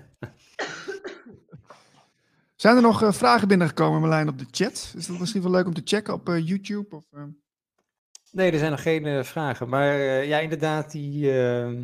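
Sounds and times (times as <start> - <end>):
person coughing: 0.5 - 1.8
speech: 2.6 - 7.4, 8.3 - 11.8.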